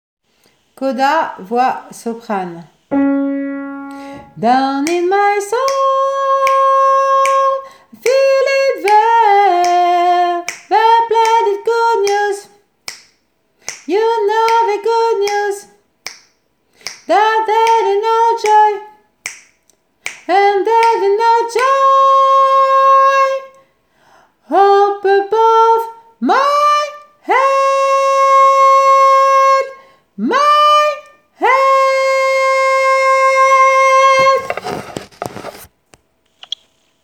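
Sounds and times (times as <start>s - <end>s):
soprano voice: 0.8s - 12.6s, 13.9s - 15.8s, 17.1s - 19.0s, 20.3s - 23.6s, 24.5s - 34.5s.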